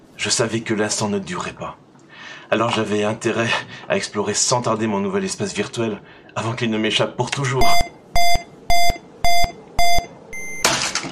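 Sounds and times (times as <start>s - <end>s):
speech: 0.2s - 1.8s, 2.5s - 7.9s
clock radio alarm beeping: 7.6s - 10.7s.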